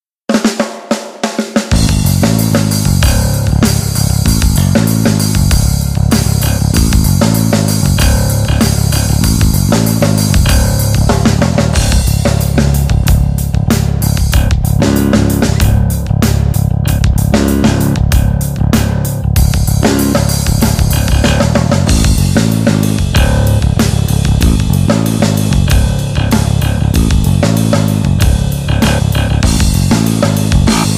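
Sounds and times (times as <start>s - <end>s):
picked electric bass in nu metal style: 1.7s - 30.9s.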